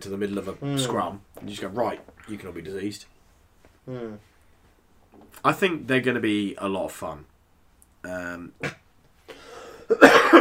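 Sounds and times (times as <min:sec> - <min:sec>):
speech: 0:00.0 - 0:03.2, 0:03.9 - 0:04.3, 0:05.2 - 0:07.3, 0:08.0 - 0:08.8, 0:09.9 - 0:10.3
person coughing: 0:09.6 - 0:10.3.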